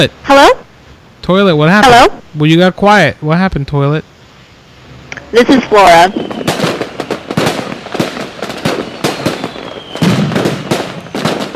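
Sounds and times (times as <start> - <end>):
speech: 0.0 - 0.6, 1.2 - 4.1, 5.3 - 6.5
fireworks banging and crackling: 5.2 - 11.5.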